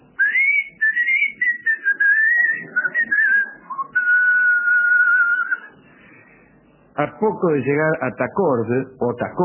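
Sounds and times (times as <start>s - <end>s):
person whistling a wavering tune: 0.2s - 5.7s
speech: 7.0s - 9.4s.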